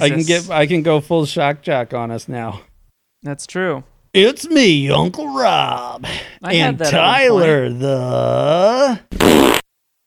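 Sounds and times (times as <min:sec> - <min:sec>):
speech: 0:00.0 - 0:09.6
wet sputtering fart: 0:09.1 - 0:09.7.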